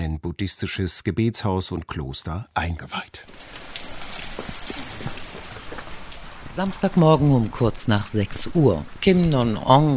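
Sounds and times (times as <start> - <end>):
speech: 0.0 - 3.6, 6.6 - 9.9
heavy pouring rain at a Buddhist pagoda and monastery in Évry: 3.2 - 9.9.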